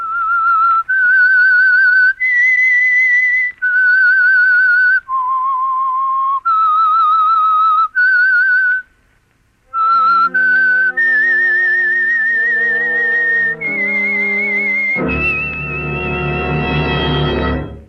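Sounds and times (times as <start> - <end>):
person whistling a theme tune: 0.0 - 8.9, 9.7 - 16.3
full orchestral music: 9.8 - 17.8.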